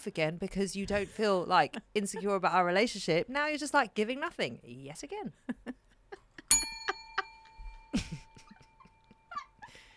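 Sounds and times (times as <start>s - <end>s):
speech: 0.0s - 5.6s
bright bell ringing: 6.5s - 9.8s.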